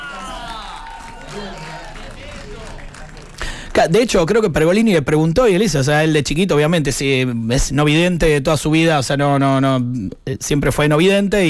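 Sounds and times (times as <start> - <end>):
audience clapping and cheering for a band: 0.0 - 4.5
speech: 1.3 - 1.8, 3.8 - 11.4.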